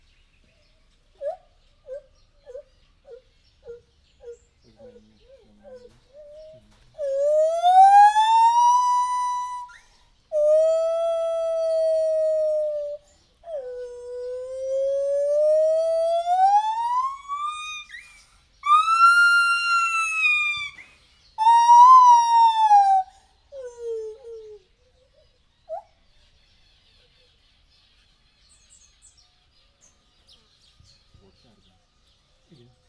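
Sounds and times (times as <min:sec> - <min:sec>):
white-handed gibbon calling at a zoo: 0:01.2 - 0:20.8, 0:21.4 - 0:24.5.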